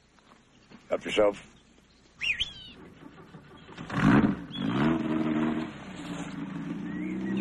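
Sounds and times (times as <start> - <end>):
faint bird chirps: 0.0 - 3.8, 6.8 - 7.3
speech: 0.9 - 1.6
car engine starting and driving off: 2.8 - 7.3.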